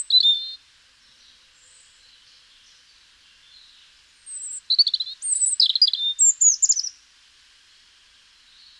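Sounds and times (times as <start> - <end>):
European robin Erithacus rubecula singing: 0.0 - 0.6, 1.2 - 7.0.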